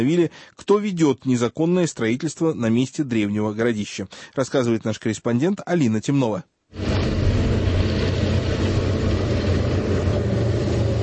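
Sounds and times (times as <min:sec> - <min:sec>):
speech: 0:00.0 - 0:07.2
KamAZ heavy truck engine running: 0:06.8 - 0:11.0.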